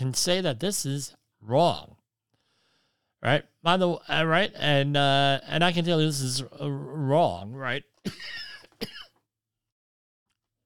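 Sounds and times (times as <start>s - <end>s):
speech: 0.0s - 2.0s, 3.2s - 9.0s
person coughing: 8.1s - 9.2s
raspy throat clearing: 8.1s - 9.2s.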